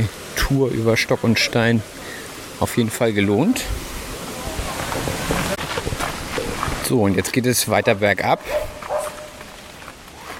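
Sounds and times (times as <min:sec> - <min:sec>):
speech: 0:00.0 - 0:04.0, 0:06.9 - 0:08.8
steady outdoor hiss: 0:00.0 - 0:10.3
dog barking: 0:07.8 - 0:09.5.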